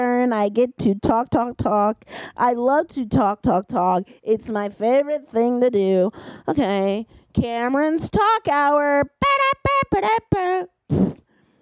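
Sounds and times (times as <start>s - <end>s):
speech: 0.0s - 11.1s
mouth fart noises: 10.9s - 11.3s.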